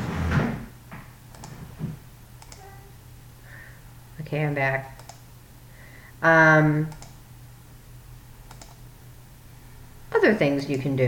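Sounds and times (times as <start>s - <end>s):
wooden chair being moved with a scrape and knock: 0.0s - 0.7s
speech: 4.3s - 5.0s, 6.2s - 7.0s, 10.2s - 11.0s.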